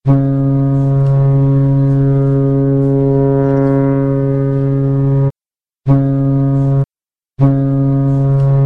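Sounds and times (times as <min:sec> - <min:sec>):
long and short signal tones: 0:00.0 - 0:08.6.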